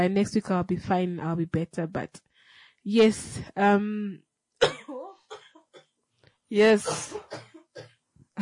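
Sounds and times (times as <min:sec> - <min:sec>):
speech: 0:00.0 - 0:04.8, 0:06.5 - 0:08.4
woman fighting a persistent cough: 0:04.6 - 0:05.8, 0:06.7 - 0:08.4.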